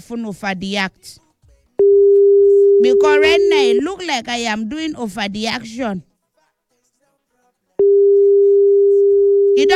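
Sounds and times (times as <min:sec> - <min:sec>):
speech: 0:00.0 - 0:01.2, 0:02.8 - 0:06.1, 0:09.6 - 0:09.7
steady telephone tone while calling a person back: 0:01.8 - 0:04.0, 0:07.8 - 0:09.7.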